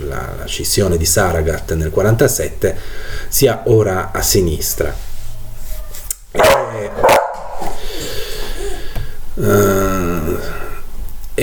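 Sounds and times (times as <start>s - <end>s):
speech: 0.1s - 5.1s, 9.4s - 9.8s
small dog barking: 6.4s - 7.6s.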